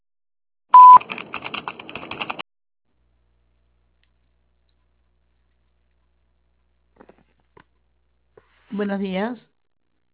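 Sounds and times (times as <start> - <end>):
answering machine tone beep: 0.8 - 1.0
speech: 8.8 - 9.5.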